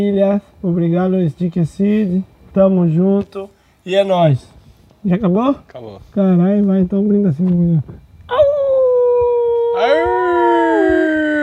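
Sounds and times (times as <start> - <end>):
speech: 0.0 - 8.6
person howling like a dog: 8.3 - 11.4.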